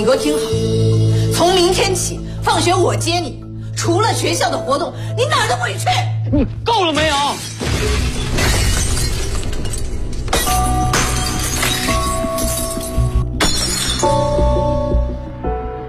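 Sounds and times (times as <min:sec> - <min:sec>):
speech: 0:00.0 - 0:08.1
glass picture frame shattering from a punch: 0:07.0 - 0:14.4.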